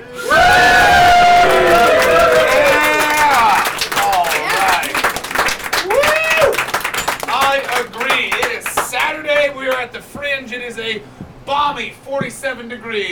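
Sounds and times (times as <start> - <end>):
live audience whooping and cheering: 0.0 - 9.2
dense steady applause: 0.2 - 10.0.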